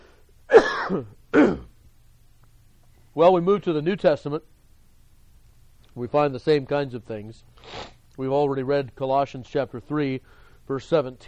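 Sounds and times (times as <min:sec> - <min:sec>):
person clearing a tickle in the throat: 0:00.5 - 0:01.8
speech: 0:00.9 - 0:01.7, 0:03.2 - 0:04.5, 0:06.0 - 0:11.2.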